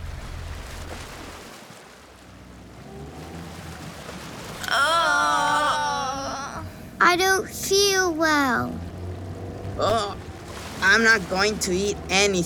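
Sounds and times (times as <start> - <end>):
waves sloshing against a ferry crossing to France: 0.0 - 12.4
loud wavering wail: 4.6 - 6.8
speech: 7.1 - 8.8, 10.9 - 12.4.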